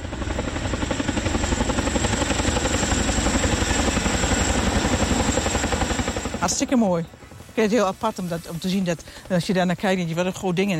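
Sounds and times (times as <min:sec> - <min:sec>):
large helicopter rotor throb while landing: 0:00.0 - 0:10.7
speech: 0:06.5 - 0:10.7.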